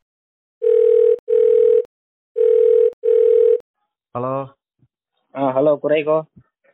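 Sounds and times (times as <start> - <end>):
telephone ringback tone of short steady electronic beeps: 0.6 - 3.6
speech: 4.2 - 4.6, 5.3 - 6.5.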